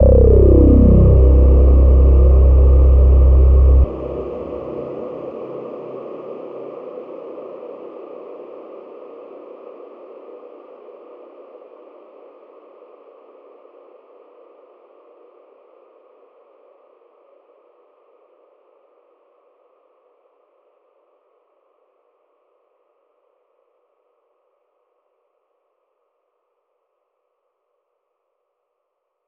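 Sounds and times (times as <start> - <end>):
choral drone hit: 0.0 - 6.5.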